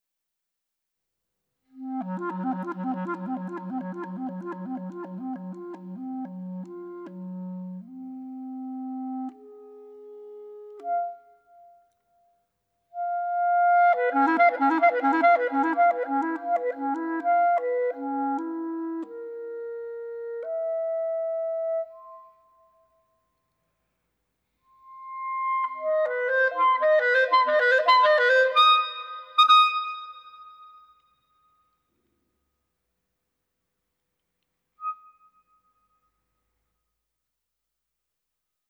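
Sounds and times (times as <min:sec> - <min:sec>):
clarinet: 0:01.8 - 0:12.0, 0:13.0 - 0:22.8, 0:24.8 - 0:31.0.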